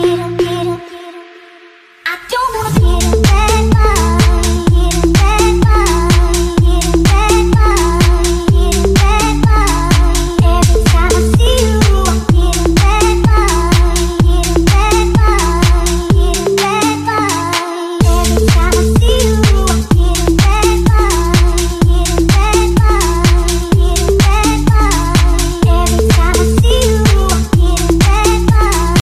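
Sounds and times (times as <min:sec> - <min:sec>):
electro house music ringtone: 0:00.0 - 0:01.8, 0:02.8 - 0:29.0.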